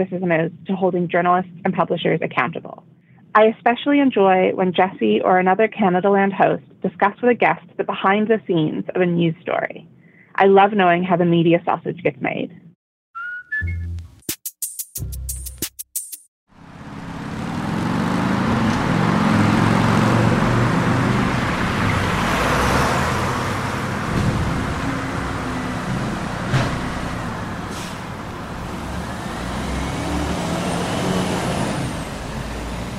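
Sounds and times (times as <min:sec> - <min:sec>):
speech: 0:00.0 - 0:12.6
loud traffic on a major city street in Montreal: 0:16.5 - 0:32.9.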